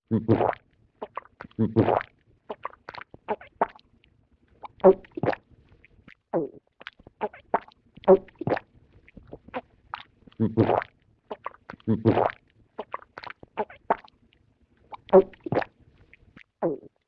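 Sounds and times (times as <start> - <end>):
vintage cartoon comedy vocal human swallowing: 0.1 - 3.8, 4.6 - 5.4, 7.2 - 8.6, 9.2 - 14.1, 14.9 - 15.7, 16.6 - 17.0.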